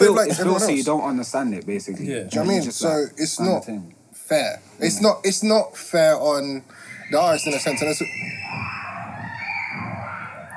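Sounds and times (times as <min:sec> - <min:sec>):
speech: 0:00.0 - 0:08.8
crowd of people screaming on a roller coaster: 0:07.0 - 0:10.5.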